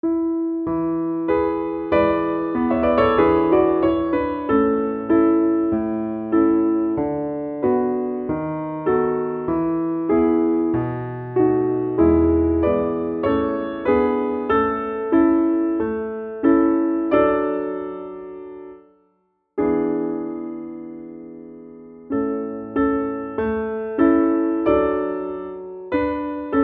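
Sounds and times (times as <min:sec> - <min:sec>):
slower tempo piano accompaniment: 0:00.0 - 0:26.6.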